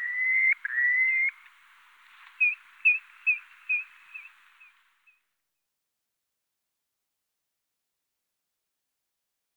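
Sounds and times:
purple sandpiper whistles and clipped notes: 0.0s - 1.5s, 2.3s - 4.7s.

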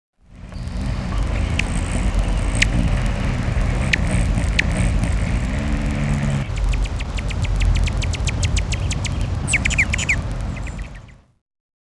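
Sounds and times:
steady loud low rumble: 0.2s - 9.6s
Allen's hummingbird giving sharp high chips and chittering clicks: 0.5s - 11.1s.

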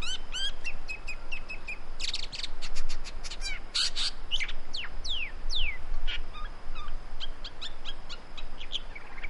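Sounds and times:
great woodswallow calls: 0.0s - 9.2s.

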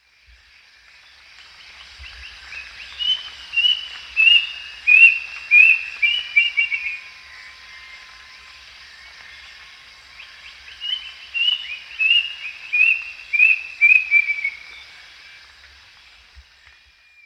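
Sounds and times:
plaintive cuckoo calling: 2.9s - 8.7s, 10.3s - 14.8s.

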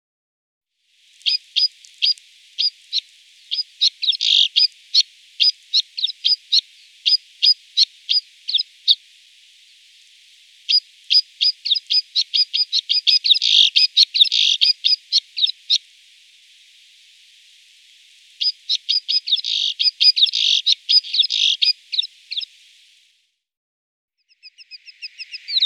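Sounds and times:
snowfinch chirping: 1.2s - 9.0s, 10.6s - 15.8s, 18.2s - 22.6s, 24.3s - 25.6s.

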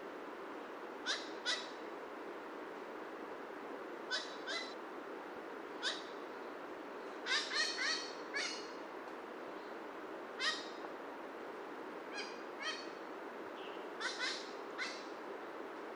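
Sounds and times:
broad hiss of background noise: 0.0s - 15.9s
horned parakeet giving harsh raspy calls: 1.0s - 1.8s, 4.1s - 4.8s, 5.8s - 6.2s, 7.2s - 8.8s, 10.4s - 10.8s, 12.1s - 13.0s, 13.6s - 15.1s.

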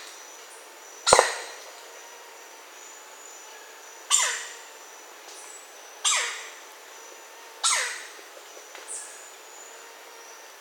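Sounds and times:
Red-necked Woodpecker calling with harsh scratchy notes: 1.0s - 1.7s, 4.1s - 4.6s, 7.6s - 8.2s.

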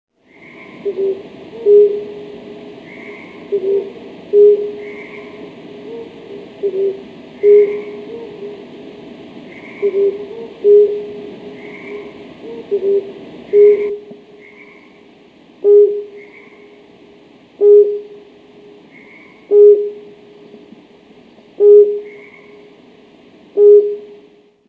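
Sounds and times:
flammulated owl hooting: 0.3s - 8.7s, 9.4s - 15.0s, 15.6s - 16.8s, 17.6s - 18.3s, 18.9s - 20.3s, 21.6s - 22.8s, 23.6s - 24.2s.

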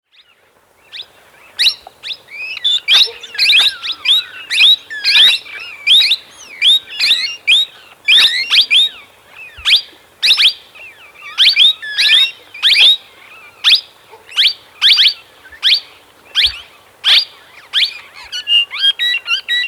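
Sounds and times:
plum-headed parakeet calling: 0.9s - 19.6s.

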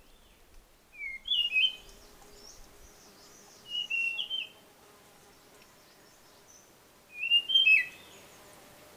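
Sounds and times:
blue-fronted robin calling with whistled phrases: 0.9s - 1.9s, 3.7s - 4.6s, 7.1s - 8.1s.

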